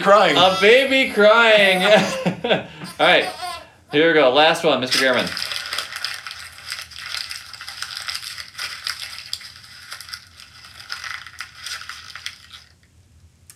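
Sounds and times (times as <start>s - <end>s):
laughter: 0.0s - 3.6s
speech: 0.0s - 5.5s
paper being crumpled: 4.8s - 12.8s.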